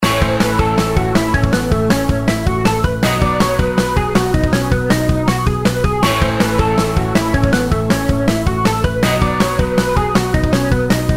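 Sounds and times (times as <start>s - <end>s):
intro background music: 0.0s - 11.1s.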